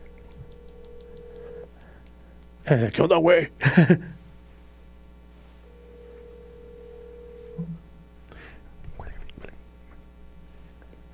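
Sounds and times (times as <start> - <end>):
faint steady telephone tone while a call is dialed: 0.0 - 1.7, 5.6 - 7.8
speech: 2.6 - 4.2.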